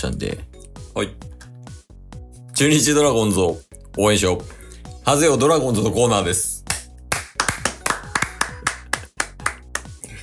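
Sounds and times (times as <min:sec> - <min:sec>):
speech: 0:00.0 - 0:01.3, 0:02.6 - 0:06.6
hand claps: 0:06.6 - 0:10.0.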